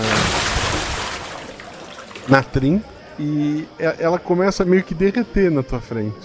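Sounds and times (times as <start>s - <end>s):
bucketful of water being thrown and splashing: 0.0s - 2.6s
speech: 2.3s - 6.2s.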